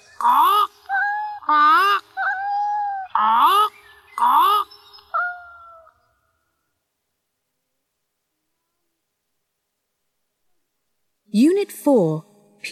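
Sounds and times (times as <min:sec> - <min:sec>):
parrot squawking and calling: 0:00.0 - 0:06.1.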